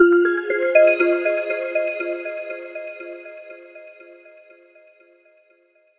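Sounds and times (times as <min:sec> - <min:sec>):
background music: 0:00.0 - 0:04.4.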